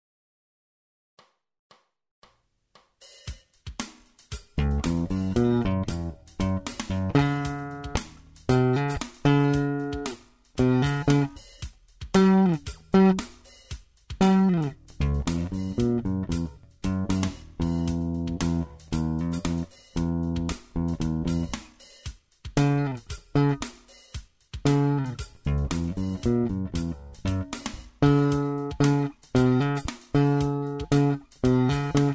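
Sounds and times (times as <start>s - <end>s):
drums: 2.8s - 32.1s
Jazz Bass with treble up: 4.6s - 11.5s, 12.1s - 13.4s, 14.2s - 21.7s, 22.6s - 23.7s, 24.6s - 32.1s.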